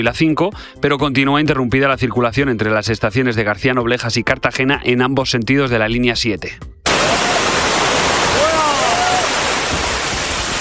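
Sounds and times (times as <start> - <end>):
speech: 0.0 - 6.8
heavy rain pouring down on a protest camp at Puerta del Sol: 6.9 - 10.5.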